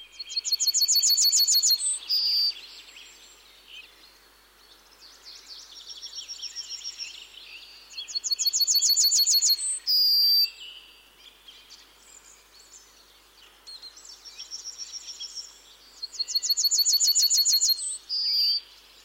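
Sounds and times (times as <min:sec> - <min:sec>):
yellowhammer singing: 0:00.0 - 0:04.0, 0:05.4 - 0:10.9, 0:13.7 - 0:19.0
softer bird calls: 0:00.0 - 0:19.0.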